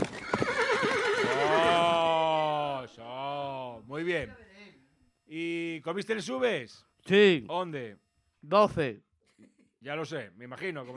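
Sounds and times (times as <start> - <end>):
horse hooves clopping: 0.0 - 1.9
restless horse kept indoors whinnying: 0.0 - 2.4
speech: 4.0 - 4.4, 5.3 - 10.9.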